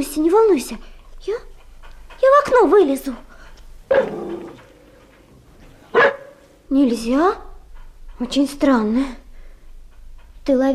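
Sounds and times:
speech: 0:00.0 - 0:01.5, 0:02.2 - 0:03.3, 0:06.7 - 0:07.5, 0:08.2 - 0:09.2, 0:10.4 - 0:10.7
dog barking: 0:03.9 - 0:04.6, 0:05.9 - 0:06.4.

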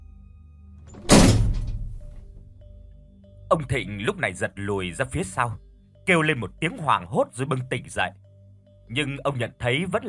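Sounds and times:
head banging against a door frame: 0:01.0 - 0:02.0
speech: 0:03.5 - 0:08.2, 0:08.9 - 0:10.0.

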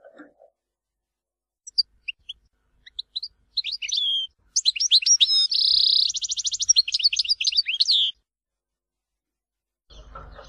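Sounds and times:
European goldfinch singing: 0:01.6 - 0:08.2.

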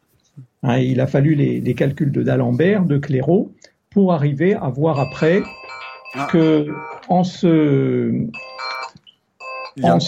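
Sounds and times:
speech: 0:00.4 - 0:08.4, 0:09.8 - 0:10.0
telephone ringing: 0:04.9 - 0:07.1, 0:08.3 - 0:10.0.

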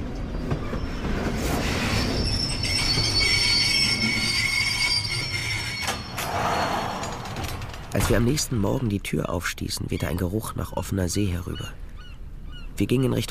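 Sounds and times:
train wheels rattling on rails: 0:00.0 - 0:08.8
speech: 0:08.0 - 0:11.8, 0:12.8 - 0:13.2.

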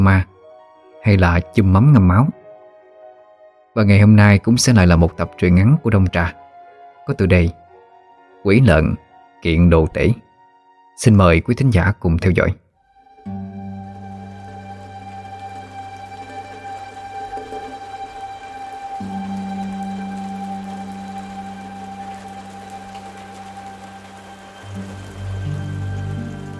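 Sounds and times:
speech: 0:00.0 - 0:00.3, 0:01.0 - 0:02.4, 0:03.8 - 0:06.4, 0:07.1 - 0:07.6, 0:08.4 - 0:10.2, 0:11.0 - 0:12.6
steady rain falling over a village on muddy ground: 0:13.2 - 0:26.5.

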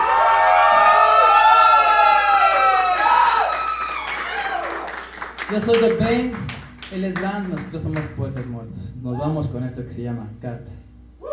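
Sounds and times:
crowd at a live music show in Tláhuac cheering and whooping: 0:00.0 - 0:05.1
speech: 0:05.5 - 0:10.8.

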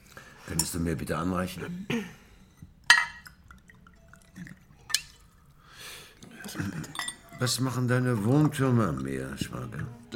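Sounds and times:
speech: 0:00.5 - 0:02.2, 0:06.5 - 0:10.1
faint glassy clinks: 0:02.5 - 0:04.3, 0:06.6 - 0:07.7
wine poured into a glass at a dinner table: 0:02.9 - 0:05.6, 0:06.4 - 0:10.0.

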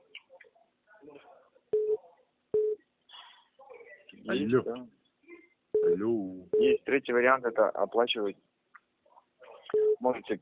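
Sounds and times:
speech: 0:04.3 - 0:05.0, 0:05.9 - 0:08.5, 0:10.0 - 0:10.4
telephone call-waiting beeps over a telephone line: 0:05.8 - 0:06.8, 0:09.7 - 0:10.0.

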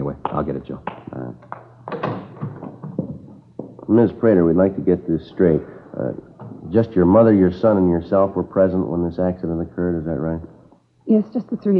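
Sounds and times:
speech: 0:00.3 - 0:01.0, 0:03.9 - 0:10.5, 0:11.1 - 0:11.7
front door opening and closing with soft hollow thumps: 0:01.8 - 0:03.4.

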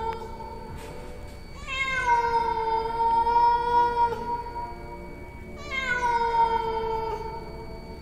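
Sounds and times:
stray cat meowing underfoot: 0:01.6 - 0:04.4, 0:05.6 - 0:07.4.

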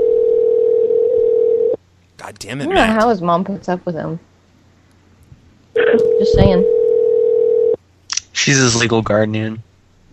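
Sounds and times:
telephone dial tone after a call is hung up: 0:00.0 - 0:01.8, 0:06.0 - 0:07.8
speech: 0:02.3 - 0:04.3, 0:06.2 - 0:06.8, 0:08.4 - 0:09.7.

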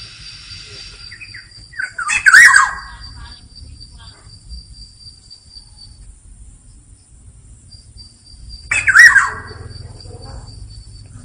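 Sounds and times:
black-naped oriole giving harsh squawking burst with warbled fluty ending and nasal notes: 0:00.0 - 0:04.2, 0:08.6 - 0:11.2
steady high whine: 0:00.0 - 0:11.2.

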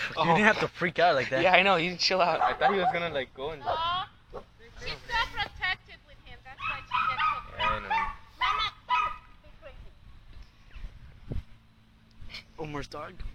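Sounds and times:
speech: 0:00.2 - 0:04.5, 0:12.8 - 0:13.3
8-week-old Dachshund puppy yipping and barking: 0:02.3 - 0:03.1, 0:06.6 - 0:09.3.

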